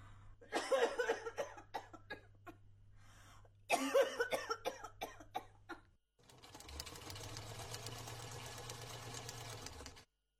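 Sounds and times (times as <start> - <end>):
person with rapid harsh hacking coughing fits: 0.5 - 2.4, 3.7 - 5.7
sewing machine running: 6.2 - 10.1.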